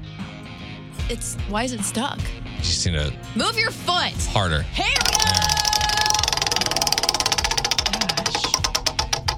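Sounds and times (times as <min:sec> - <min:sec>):
speech: 0:01.1 - 0:05.6
prize wheel ratchet ticking as the wheel is spun: 0:04.8 - 0:09.3.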